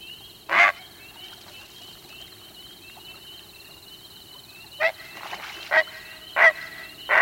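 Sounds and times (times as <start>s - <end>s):
heron giving short harsh croaking calls at night: 5.7s - 7.1s.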